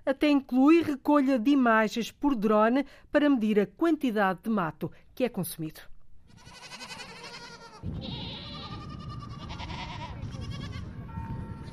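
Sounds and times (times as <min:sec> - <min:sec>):
speech: 0:00.1 - 0:06.9, 0:07.8 - 0:08.2
dwarf goats bleating while grazing on scrubland: 0:06.3 - 0:10.9.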